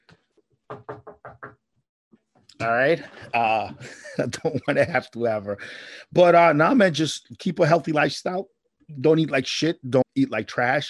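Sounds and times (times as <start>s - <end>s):
knuckles knocking on wood: 0.7s - 1.6s
laughter: 2.6s - 7.1s
speech: 2.6s - 10.8s.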